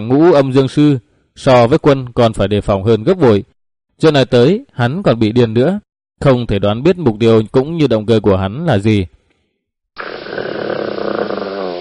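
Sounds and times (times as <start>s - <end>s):
speech: 0.0s - 9.2s
crazed dog growling low and rumbling: 10.0s - 11.7s.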